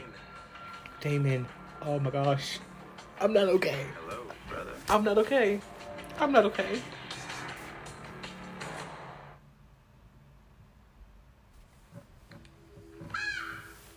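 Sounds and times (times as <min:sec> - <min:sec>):
speech: 0:01.0 - 0:04.1, 0:04.9 - 0:07.0
crow cawing: 0:13.0 - 0:13.9.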